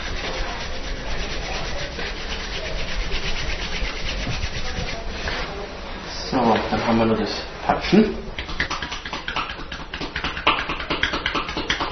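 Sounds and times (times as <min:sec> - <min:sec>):
two palms rubbing briskly together: 0:00.0 - 0:05.5, 0:08.4 - 0:11.9
speech: 0:06.7 - 0:08.3.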